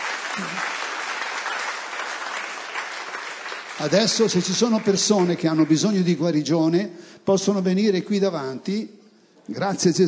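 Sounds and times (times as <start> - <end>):
church congregation clapping during a worship service: 0.0 - 6.7
speech: 0.4 - 0.8, 3.8 - 10.0.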